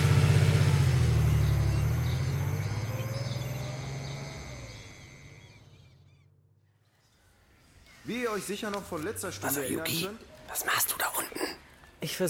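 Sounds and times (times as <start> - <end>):
car engine rumbling as the car drives off: 0.0 - 6.3
speech: 8.1 - 12.2.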